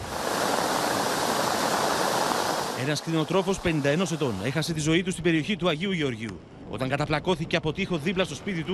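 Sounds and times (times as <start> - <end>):
floodwater rushing through a ravine turned into a torrent by heavy rain from storm in Volos, Greece: 0.0 - 5.8
speech: 2.9 - 8.7.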